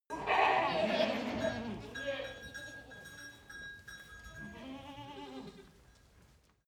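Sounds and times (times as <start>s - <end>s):
excited goat herd bleating: 0.1s - 2.4s, 4.4s - 5.7s.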